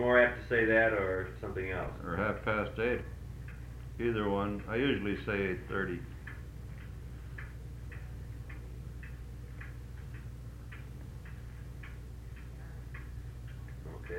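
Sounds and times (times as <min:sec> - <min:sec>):
speech: 0:00.0 - 0:03.2, 0:04.0 - 0:06.1
low hum: 0:00.0 - 0:14.1
wall clock mounted up high ticking: 0:00.0 - 0:14.1.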